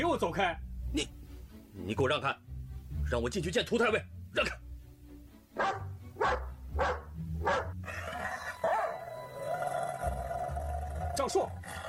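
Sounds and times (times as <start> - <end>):
speech: 0.0 - 1.2, 1.8 - 2.5, 3.1 - 4.6, 5.6 - 5.8
fierce dog barking: 5.6 - 7.8, 8.6 - 9.0
fierce dog snarling growl: 9.6 - 11.8.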